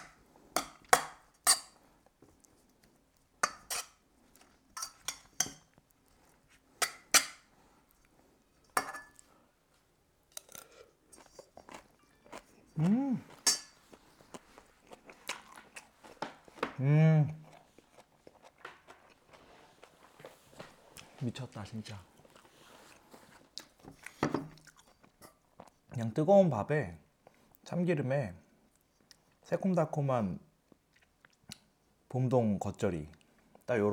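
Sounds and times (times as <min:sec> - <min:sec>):
spoon scraping and striking a metal bowl while mixing rice: 0:00.6 - 0:01.8, 0:03.4 - 0:03.9, 0:04.8 - 0:05.7, 0:08.6 - 0:09.2, 0:12.0 - 0:12.4, 0:13.4 - 0:13.8
speech: 0:12.8 - 0:13.3, 0:16.8 - 0:17.4, 0:21.3 - 0:22.2, 0:26.0 - 0:27.0, 0:27.7 - 0:28.4, 0:29.5 - 0:30.4, 0:32.1 - 0:33.9.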